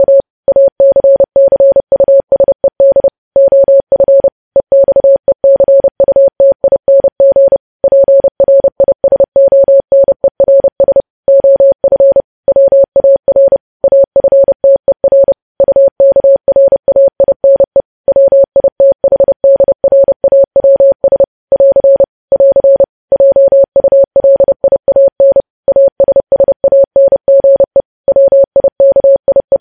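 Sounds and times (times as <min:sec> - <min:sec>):
Morse code mid-pitched beep keyed in dots and dashes: 0:00.0 - 0:29.5.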